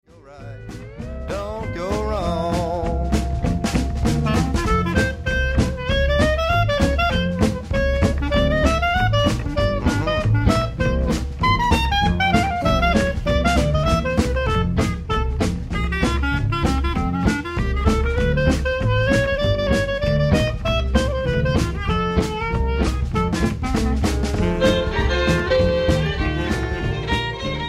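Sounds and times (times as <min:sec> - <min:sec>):
jazz clarinet: 0:00.2 - 0:27.6.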